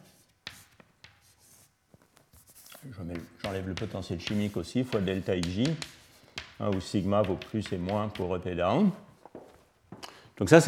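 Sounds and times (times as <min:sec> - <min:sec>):
writing on a board during a physics lecture: 0:00.0 - 0:01.7, 0:02.3 - 0:08.6
speech: 0:02.8 - 0:06.0, 0:06.6 - 0:09.1, 0:10.4 - 0:10.6.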